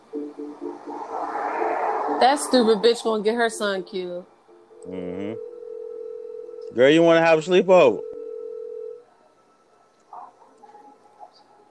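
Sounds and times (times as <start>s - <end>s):
speech: 2.2s - 5.5s, 6.7s - 8.1s
steady telephone tone: 5.1s - 6.8s, 7.8s - 9.0s.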